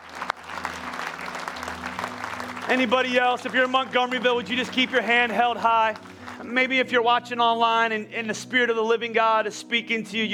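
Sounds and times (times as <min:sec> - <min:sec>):
audience clapping: 0:00.0 - 0:07.1
speech: 0:02.7 - 0:10.3.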